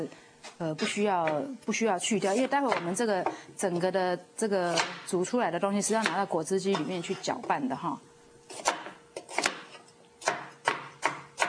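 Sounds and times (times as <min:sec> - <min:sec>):
speech: 0:00.0 - 0:08.7
knife chopping a washed unpeeled carrot on a cutting board: 0:02.3 - 0:03.4, 0:04.7 - 0:05.1, 0:05.9 - 0:06.9, 0:08.5 - 0:11.4.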